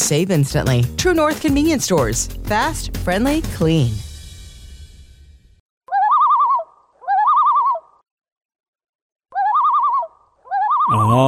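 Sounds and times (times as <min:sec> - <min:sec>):
speech: 0:00.1 - 0:04.1
common loon calling in Minnesota: 0:05.9 - 0:08.0, 0:09.3 - 0:11.2.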